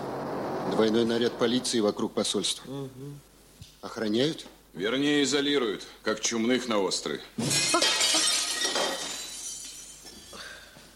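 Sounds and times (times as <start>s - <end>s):
speech: 0.7s - 7.9s
embassy window pane smashed by a thrown stone: 7.4s - 10.0s
glass shards tinkling and scattering: 7.4s - 10.4s.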